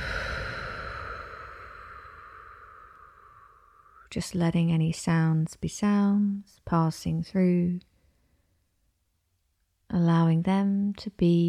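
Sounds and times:
deep breath in through the nose and slow exhale: 0.0 - 4.1
quiet sustained tone: 0.0 - 4.2
speech: 4.1 - 7.9, 9.9 - 11.4.

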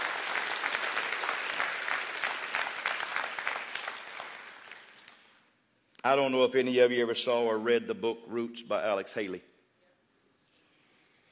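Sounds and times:
audience clapping and applauding: 0.0 - 5.5
speech: 6.0 - 9.5.

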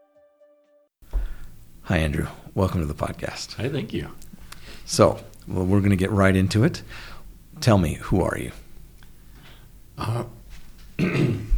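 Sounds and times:
speech: 1.9 - 8.6, 10.0 - 10.4, 11.0 - 11.4
person clearing throat: 10.0 - 10.4, 11.0 - 11.5.

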